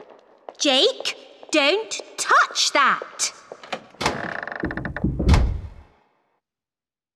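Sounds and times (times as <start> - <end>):
speech: 0.6 - 3.4
heavy hidden door creaking and rattling open: 3.6 - 5.9.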